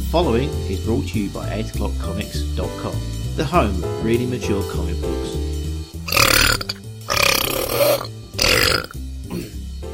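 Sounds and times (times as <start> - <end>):
speech: 0.1 - 5.5
person belching: 6.1 - 9.5.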